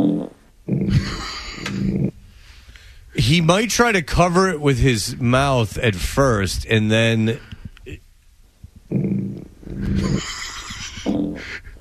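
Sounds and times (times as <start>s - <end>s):
short low buzzy fart noises: 0.0s - 2.2s, 8.9s - 11.7s
speech: 3.3s - 8.0s.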